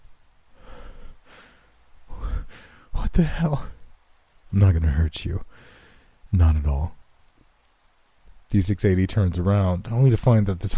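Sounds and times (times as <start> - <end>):
woman breathing heavily with raspy gasps: 0.6 - 2.9
speech: 3.2 - 3.8, 4.5 - 5.6, 6.3 - 7.0, 8.5 - 10.7.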